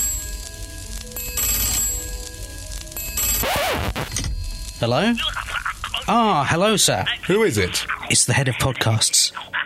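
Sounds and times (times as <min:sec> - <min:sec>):
old telephone bell ringing from a worn sound effects record: 0:01.2 - 0:02.2, 0:03.0 - 0:04.9
speech: 0:04.8 - 0:05.4, 0:06.1 - 0:09.5.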